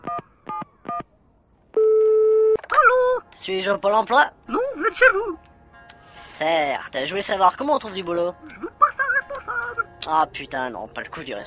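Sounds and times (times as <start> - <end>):
steady telephone tone: 1.8 - 2.6
speech: 3.4 - 5.5, 6.4 - 8.7, 10.1 - 11.4
laughter: 8.4 - 10.0.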